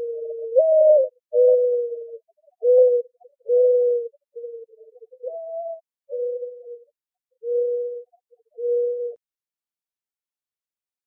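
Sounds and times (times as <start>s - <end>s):
Mourning dove cooing in Arizona: 0.0s - 9.2s.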